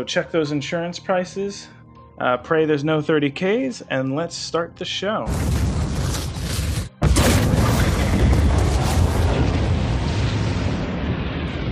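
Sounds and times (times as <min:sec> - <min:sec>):
speech: 0:00.0 - 0:05.6
sci-fi spaceship cannon blast: 0:05.3 - 0:11.7.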